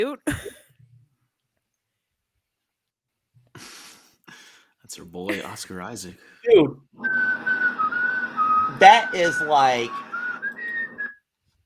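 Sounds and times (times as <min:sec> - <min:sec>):
speech: 0:00.0 - 0:00.6, 0:04.9 - 0:07.6, 0:08.8 - 0:10.0
whistled tune: 0:07.0 - 0:11.2.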